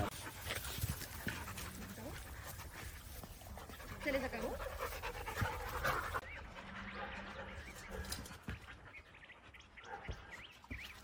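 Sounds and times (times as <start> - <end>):
puppies panting: 0.0 - 11.0
speech: 4.0 - 4.7.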